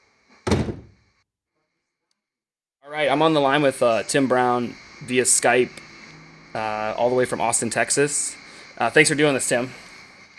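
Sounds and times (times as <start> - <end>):
door pushed shut with a solid thud: 0.4 - 1.0
speech: 2.9 - 5.9, 6.5 - 9.9.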